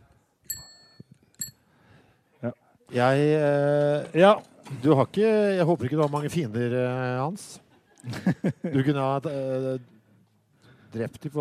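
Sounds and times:
old bicycle bell ringing: 0:00.4 - 0:01.6
speech: 0:02.4 - 0:10.0, 0:10.9 - 0:11.4
laughter: 0:07.6 - 0:09.7.

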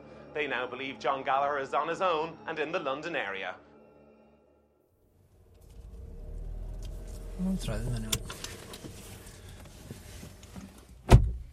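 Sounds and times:
speech: 0:00.4 - 0:03.7, 0:07.4 - 0:08.1
low rumble: 0:05.1 - 0:09.6
car door shutting as someone gets out of a car: 0:05.5 - 0:11.5.

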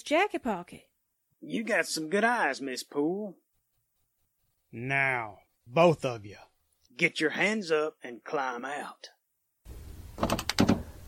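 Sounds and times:
speech: 0:00.0 - 0:03.4, 0:04.7 - 0:09.2
car door opening with handle and latch clicks: 0:10.2 - 0:10.9.

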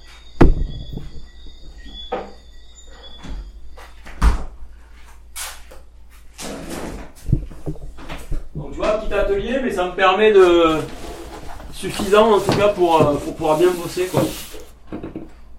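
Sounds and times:
speech: 0:08.8 - 0:11.0, 0:11.8 - 0:14.4
wooden chair being lifted and moved: 0:11.7 - 0:15.3.

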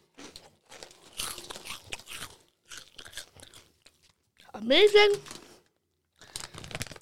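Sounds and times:
Cheetos Crunchy cheese-flavor snacks being chewed: 0:00.0 - 0:04.6, 0:06.1 - 0:06.9
speech: 0:04.6 - 0:05.3.

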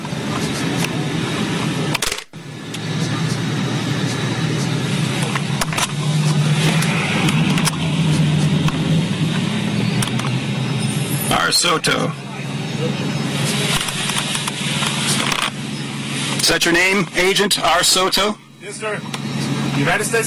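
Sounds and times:
car engine and road rumble heard from inside the vehicle: 0:00.0 - 0:20.2
speech: 0:11.6 - 0:12.2, 0:16.5 - 0:19.2, 0:19.8 - 0:20.2.

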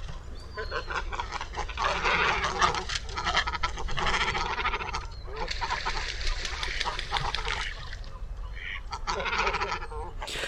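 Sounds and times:
colony of cormorants croaking and grunting: 0:00.0 - 0:10.4.

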